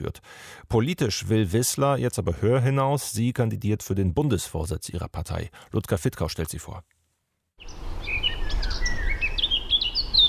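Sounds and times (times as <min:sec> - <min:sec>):
speech: 0:00.0 - 0:06.9
birds chirping and trilling in a forest in the Vogelsberg hills: 0:07.6 - 0:10.2.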